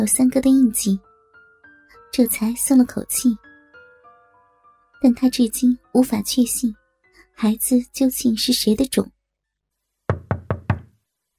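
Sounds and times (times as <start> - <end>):
speech: 0.0 - 1.1, 2.1 - 3.5, 5.0 - 6.8, 7.4 - 9.2
firm knocking on a wooden door: 10.1 - 11.0.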